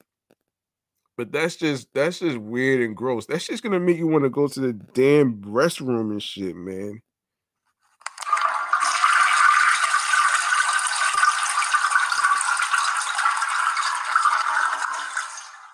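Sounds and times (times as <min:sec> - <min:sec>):
speech: 0:01.2 - 0:07.1
water rushing and gurgling down a drain: 0:08.3 - 0:15.7.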